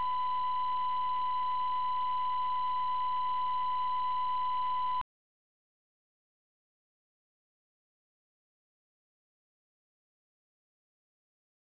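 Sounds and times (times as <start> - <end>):
artificial pure 1000Hz tone at -20dB: 0.0 - 5.0.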